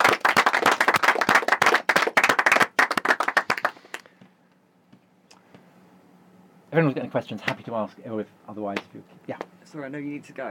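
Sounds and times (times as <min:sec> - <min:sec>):
audience applause: 0:00.0 - 0:04.0
speech: 0:06.8 - 0:10.4.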